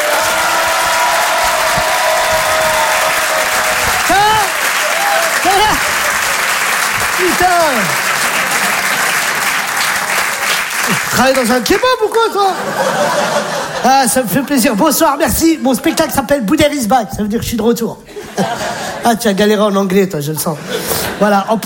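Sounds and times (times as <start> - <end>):
loud whoops and shouts from a stand-up show audience: 0.0 - 6.6
audience applause greeting a comedian at a stand-up show: 0.0 - 13.5
laughter: 5.3 - 16.5, 18.1 - 19.3
speech: 7.2 - 8.0, 11.1 - 21.6.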